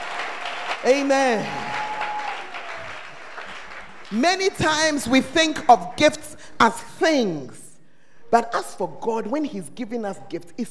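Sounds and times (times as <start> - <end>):
crowd clapping steadily: 0.0 - 6.2
speech: 0.8 - 1.8, 4.1 - 7.6, 8.3 - 10.6.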